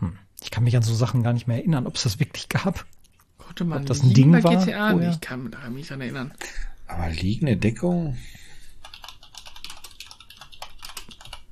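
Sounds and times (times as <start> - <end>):
speech: 0.0 - 3.0, 3.6 - 8.4
typing on a computer keyboard: 8.8 - 11.4.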